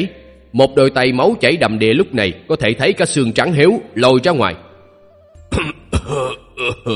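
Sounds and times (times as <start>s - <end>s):
speech: 0.0s - 4.6s, 5.5s - 6.9s
injured man coughing: 5.5s - 6.9s.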